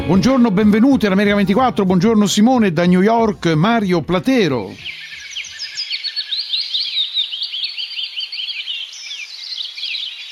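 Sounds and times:
speech: 0.1 - 5.0
bird chirping sound effect: 3.9 - 10.3.

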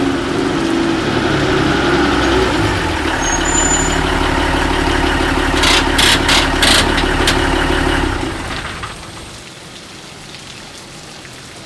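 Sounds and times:
delivery van engine reversing to a loading dock: 0.0 - 9.4
high rattling bursts: 2.1 - 9.2.

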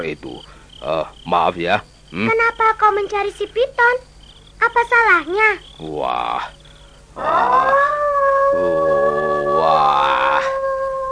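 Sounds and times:
speech: 0.0 - 6.6, 7.2 - 8.8, 9.6 - 10.6
wild dog howling: 7.2 - 11.0.

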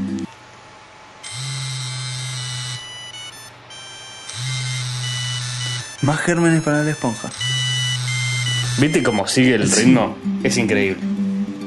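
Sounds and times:
constant electrical hum: 0.0 - 11.6
vibrating device buzzing against a phone with its microphone covered: 1.2 - 9.6
speech: 6.0 - 7.7, 8.8 - 11.6.

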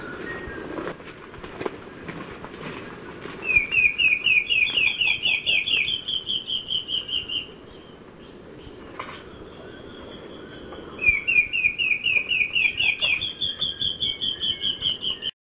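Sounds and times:
Black-faced antbird song, subspecies elegans: 3.4 - 15.4.

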